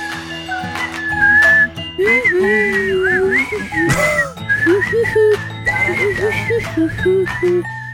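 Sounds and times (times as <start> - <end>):
steady music: 0.0 - 7.9
girl whistle-singing a tune from her throat: 1.0 - 3.8, 4.5 - 7.9.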